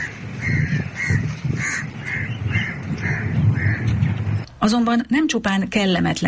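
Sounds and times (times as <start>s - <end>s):
crows cawing: 0.0s - 4.0s
speech: 4.6s - 6.2s.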